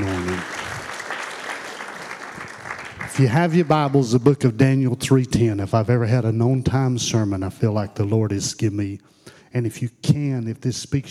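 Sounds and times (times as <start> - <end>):
audience applause with many hands clapping: 0.0 - 4.0
speech: 3.2 - 11.1.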